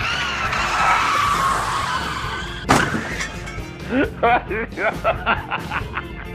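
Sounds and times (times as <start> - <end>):
long loud tire skid: 0.0 - 3.6
sharp impact: 2.6 - 4.0
laughter: 3.8 - 6.3.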